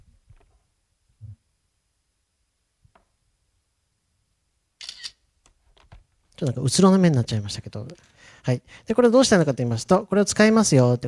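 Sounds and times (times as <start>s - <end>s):
camera shutter clicking while a selfie is taken: 4.8s - 5.2s
speech: 6.4s - 11.0s.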